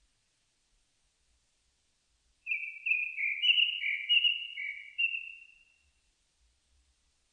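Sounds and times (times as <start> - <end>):
Japanese thrush singing sweet slurred whistles: 2.5 - 5.7.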